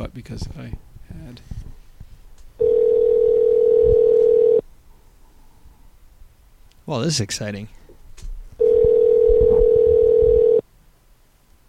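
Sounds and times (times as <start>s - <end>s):
speech: 0.0s - 1.6s, 6.9s - 7.8s
telephone dial tone while placing a call: 2.6s - 4.6s, 8.6s - 10.6s.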